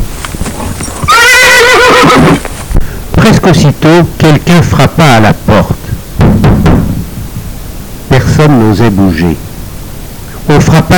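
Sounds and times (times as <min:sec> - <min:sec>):
steady noisy background: 0:00.0 - 0:10.9
horse neighing: 0:00.6 - 0:02.5
speech: 0:03.2 - 0:05.8, 0:08.4 - 0:09.5, 0:10.5 - 0:10.9.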